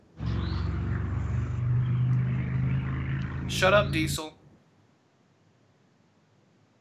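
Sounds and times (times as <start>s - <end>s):
Harley motorcycle engine rumbling past: 0.0s - 4.6s
speech: 3.5s - 4.4s.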